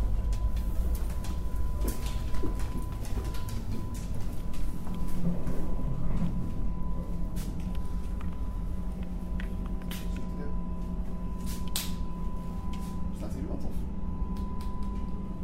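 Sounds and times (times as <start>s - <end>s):
train arriving at its final station rumbling: 0.0s - 9.2s
thin constant whine: 0.0s - 15.4s.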